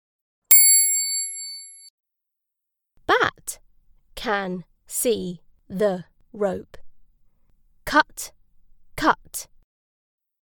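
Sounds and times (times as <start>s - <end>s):
high-pitched bell strike: 0.5s - 1.8s
speech: 4.2s - 6.8s, 7.9s - 8.4s, 9.0s - 9.5s.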